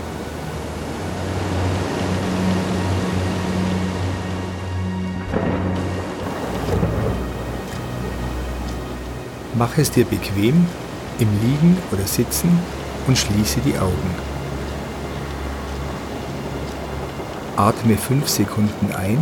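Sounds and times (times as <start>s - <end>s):
heavy rain in a thunderstorm: 0.0s - 19.1s
deep rolling thunder: 5.2s - 7.7s
speech: 9.6s - 14.3s, 17.6s - 19.1s.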